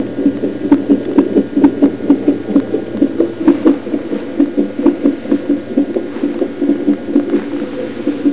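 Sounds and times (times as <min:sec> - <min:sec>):
fetal heartbeat: 0:00.0 - 0:08.3.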